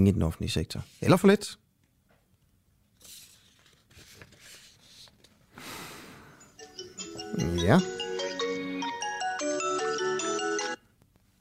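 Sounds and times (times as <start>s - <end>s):
speech: 0.0s - 1.6s, 7.3s - 8.0s
faint noise: 0.0s - 7.9s, 10.8s - 11.3s
melodic electronic phone ringtone for an incoming call: 6.4s - 10.8s.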